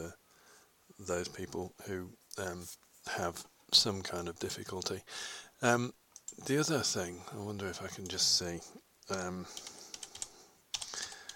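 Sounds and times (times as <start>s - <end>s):
speech: 1.0s - 9.8s
computer clicking while browsing the internet: 9.1s - 11.3s.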